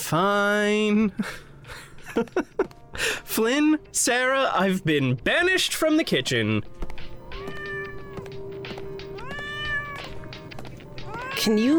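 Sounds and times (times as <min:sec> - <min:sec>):
speech: 0:00.1 - 0:01.5, 0:02.2 - 0:06.8, 0:11.4 - 0:11.7
laughter: 0:01.0 - 0:02.7
female cat meowing agitatedly: 0:07.3 - 0:08.3, 0:09.1 - 0:11.7.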